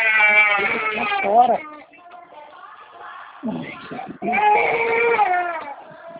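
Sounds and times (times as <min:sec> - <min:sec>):
baby whimpering and wailing: 0:00.0 - 0:01.8, 0:03.7 - 0:05.8
speech: 0:01.3 - 0:01.8, 0:03.4 - 0:04.8.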